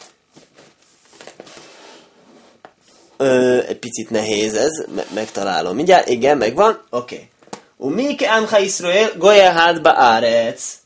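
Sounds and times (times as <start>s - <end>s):
book pages being turned: 0.0s - 3.1s
speech: 3.2s - 10.8s.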